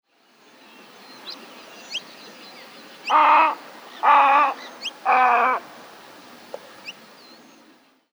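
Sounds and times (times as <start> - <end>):
little egret Egretta garzetta calling: 3.0 - 5.9.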